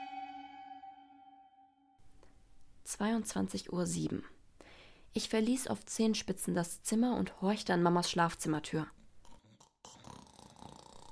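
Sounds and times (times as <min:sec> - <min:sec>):
speech: 0:02.9 - 0:04.4, 0:05.2 - 0:09.0
quiet snoring: 0:09.2 - 0:11.1.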